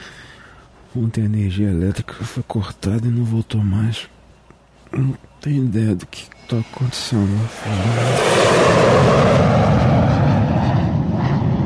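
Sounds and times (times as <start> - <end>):
speech: 1.0 - 4.2, 4.9 - 9.9
jet aircraft roaring low overhead: 6.2 - 11.6.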